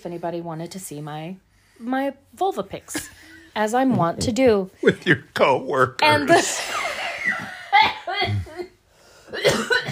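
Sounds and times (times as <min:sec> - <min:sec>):
speech: 0:00.0 - 0:07.5
person coughing: 0:09.3 - 0:09.9.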